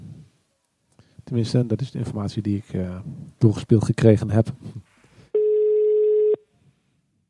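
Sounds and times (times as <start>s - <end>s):
speech: 1.3s - 4.9s
ringing tone on an outgoing phone call: 5.4s - 6.4s.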